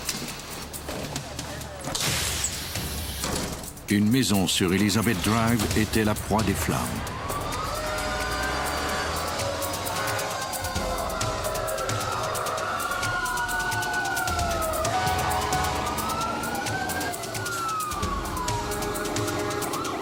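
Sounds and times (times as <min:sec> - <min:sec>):
rumbling traffic: 0:00.0 - 0:20.0
speech: 0:03.9 - 0:07.2
fire truck siren wailing while responding to an emergency call: 0:05.1 - 0:20.0.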